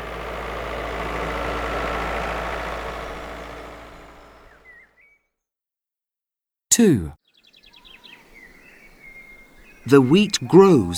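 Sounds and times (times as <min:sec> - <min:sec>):
farm tractor diesel engine running: 0:00.0 - 0:04.8, 0:09.9 - 0:10.9
speech: 0:06.8 - 0:07.2, 0:09.8 - 0:10.9.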